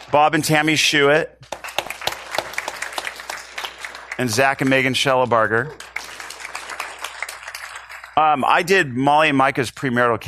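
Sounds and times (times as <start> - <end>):
crowd applauding: 0.0 - 0.8, 1.4 - 8.6
speech: 0.1 - 1.6, 4.2 - 5.9, 8.2 - 10.2.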